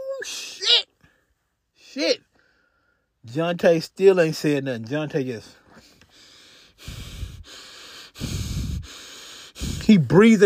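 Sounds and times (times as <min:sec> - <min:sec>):
speech: 0:00.2 - 0:00.8, 0:02.0 - 0:02.3, 0:03.3 - 0:05.6, 0:09.9 - 0:10.4
heavy raspy breathing: 0:05.6 - 0:10.4.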